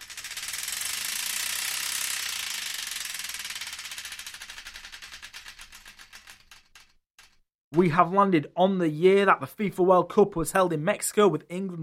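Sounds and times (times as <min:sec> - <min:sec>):
prize wheel spinning and ticking: 0:00.0 - 0:07.4
speech: 0:07.8 - 0:11.8.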